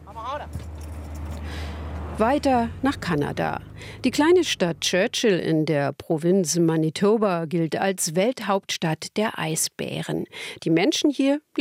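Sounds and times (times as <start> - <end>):
bus driving past: 0.0 - 5.7
broad street noise: 0.0 - 5.9
speech: 2.2 - 11.6.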